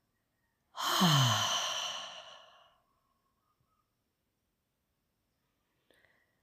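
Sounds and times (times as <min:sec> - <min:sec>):
deep exhale through the mouth: 0:00.8 - 0:02.6.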